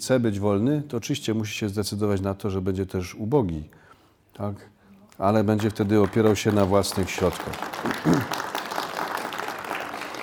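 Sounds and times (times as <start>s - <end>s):
speech: 0.0s - 3.8s, 4.4s - 8.5s
audience clapping: 5.2s - 10.2s.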